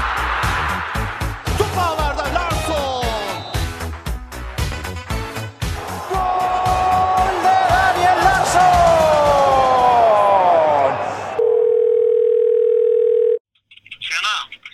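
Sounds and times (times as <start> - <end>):
loud cheering crowd: 0.0 - 4.0, 5.6 - 11.4
person answering a phone call: 11.4 - 13.4
telephone ringing tone of a call to a correspondent in Greece: 11.4 - 13.4.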